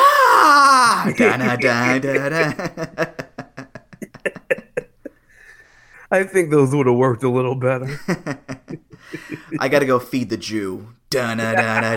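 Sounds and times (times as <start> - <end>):
person imitating a pro wrestler's pained scream: 0.0 - 1.2
laughter: 0.9 - 5.3, 7.9 - 9.8, 11.4 - 11.9
speech: 1.0 - 3.2, 6.1 - 8.4, 9.1 - 11.9.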